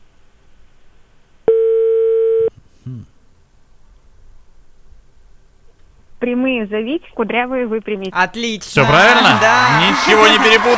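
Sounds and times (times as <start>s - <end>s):
telephone dial tone while dialing a call: 1.5s - 2.5s
speech: 6.3s - 10.7s.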